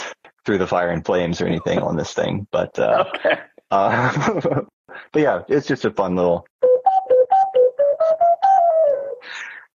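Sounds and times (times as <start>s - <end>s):
speech: 0.5s - 6.5s
laughter: 2.9s - 4.7s
small wind instrument playing a short tune: 6.6s - 9.2s.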